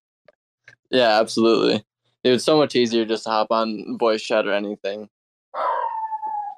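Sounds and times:
speech: 0:00.9 - 0:05.7
dog howling: 0:05.6 - 0:06.5.

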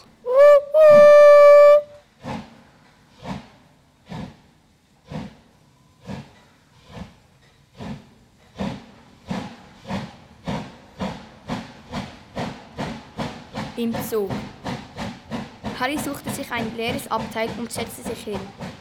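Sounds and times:
steam locomotive shrill whistle: 0:00.0 - 0:02.0
steam locomotive puffing with hissing chuffs: 0:00.0 - 0:18.7
speech: 0:13.8 - 0:14.6, 0:15.8 - 0:18.6.

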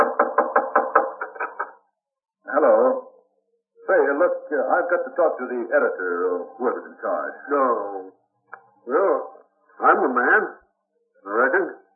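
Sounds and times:
heavy pounding on the door of a newspaper copy room: 0:00.0 - 0:01.2
laughter: 0:00.0 - 0:01.7
speech: 0:04.5 - 0:08.2, 0:08.8 - 0:10.6, 0:11.2 - 0:11.8.

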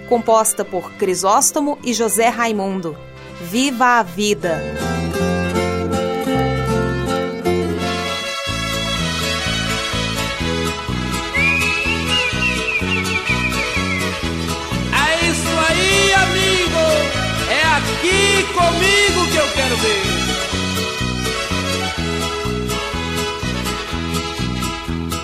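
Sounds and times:
speech: 0:00.1 - 0:05.3
recorded instrumental song intro by a band from 1988: 0:03.1 - 0:25.2.

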